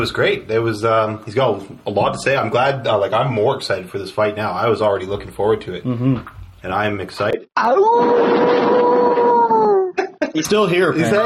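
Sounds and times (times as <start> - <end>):
speech: 0.0 - 9.0, 10.3 - 11.2
man howling over the phone: 7.6 - 10.0.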